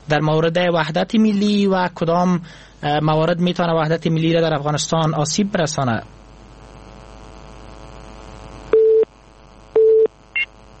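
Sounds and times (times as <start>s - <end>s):
speech: 0.1s - 6.2s
phone busy tone beeps after a call is cut off: 8.8s - 9.1s, 9.8s - 10.5s.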